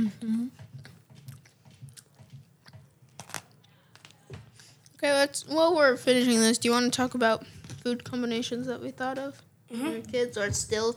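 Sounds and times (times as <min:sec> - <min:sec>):
speech: 0:00.0 - 0:00.6, 0:05.0 - 0:10.9
chewing a crunchy peanut butter sandwich: 0:00.5 - 0:05.0.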